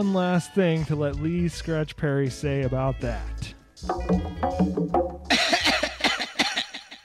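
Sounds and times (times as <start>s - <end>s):
speech: 0.0s - 5.0s
person coughing harshly: 5.3s - 6.9s.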